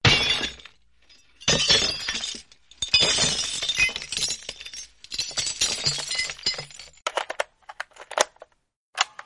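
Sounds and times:
glass smashing: 0:00.0 - 0:07.0.

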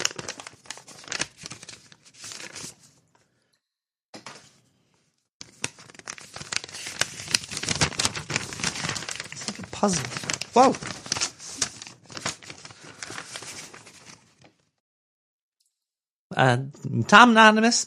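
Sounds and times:
packaging ripping and crinkling as it is opened: 0:00.0 - 0:02.8, 0:05.4 - 0:14.4
speech: 0:09.8 - 0:11.0, 0:16.4 - 0:17.8.

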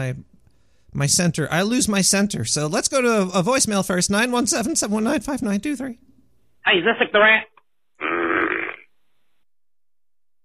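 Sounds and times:
speech: 0:00.0 - 0:00.3, 0:00.9 - 0:07.5
loud drawn-out fart recorded in a voicemail over a phone line: 0:08.0 - 0:08.9.

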